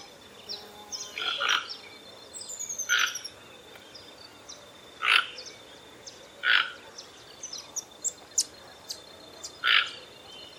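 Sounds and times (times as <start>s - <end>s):
birds chirping: 0.0s - 10.5s
Toco toucan Ramphastos toco croaking: 1.2s - 1.8s, 5.0s - 5.4s, 6.4s - 6.8s.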